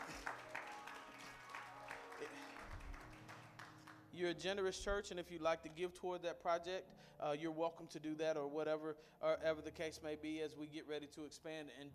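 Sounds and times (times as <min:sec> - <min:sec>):
church audience applauding: 0:00.0 - 0:04.1
speech: 0:04.1 - 0:11.9.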